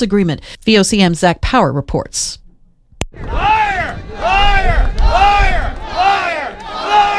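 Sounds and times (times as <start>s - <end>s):
speech: 0.0s - 2.4s, 3.1s - 3.5s
rumbling noise: 3.1s - 6.1s
large crowd of protesters booing and chanting in unison: 3.2s - 7.1s.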